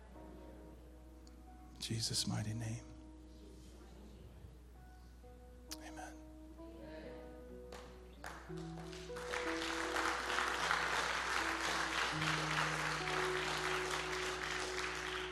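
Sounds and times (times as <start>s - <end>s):
sustained keyboard chords playing softly: 0.0s - 15.3s
speech: 1.8s - 2.9s
audience applauding: 7.7s - 15.3s.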